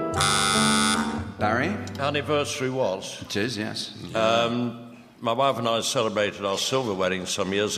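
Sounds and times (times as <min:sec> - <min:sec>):
short instrumental tune as a musical clue in a quiz game: 0:00.2 - 0:01.4
speech: 0:02.1 - 0:07.7.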